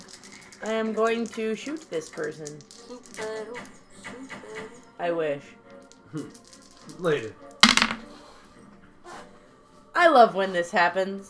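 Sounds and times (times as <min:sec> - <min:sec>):
three dice including a dragon die clattering onto a tabletop: 0:00.0 - 0:04.8, 0:05.7 - 0:08.1
speech: 0:00.6 - 0:07.5, 0:10.0 - 0:11.2.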